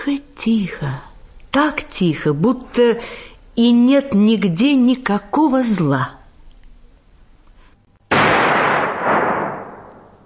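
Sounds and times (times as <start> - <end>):
speech: 0.1 - 6.2
single gunshot in a forest: 8.1 - 10.2.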